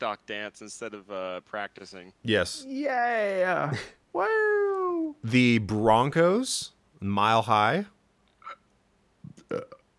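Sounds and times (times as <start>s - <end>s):
speech: 0.0s - 8.0s, 9.5s - 9.8s
guttural throaty burp: 9.3s - 9.9s.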